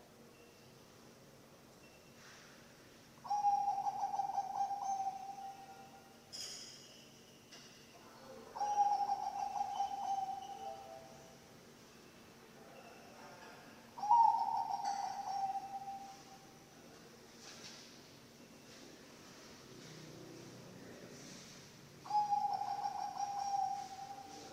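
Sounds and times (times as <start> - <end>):
zebra dove cooing: 3.2 - 6.0, 8.5 - 11.1, 14.0 - 16.4, 22.0 - 24.5.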